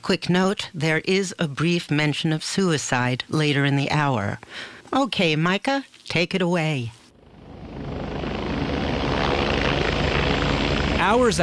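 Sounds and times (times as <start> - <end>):
speech: 0.0 - 7.0, 11.0 - 11.4
Coast Guard helicopter roaring in Louisiana after Hurricane Katrina: 7.1 - 11.4.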